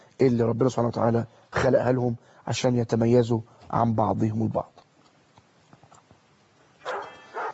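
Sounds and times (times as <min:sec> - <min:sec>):
faint hiss: 0:00.0 - 0:07.5
speech: 0:00.2 - 0:04.8
dog barking: 0:06.8 - 0:07.5.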